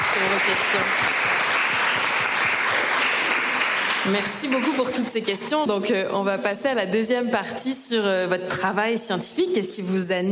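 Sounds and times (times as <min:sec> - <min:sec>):
audience applause at a talk session: 0:00.0 - 0:05.3
speech: 0:00.2 - 0:01.3, 0:04.0 - 0:10.3.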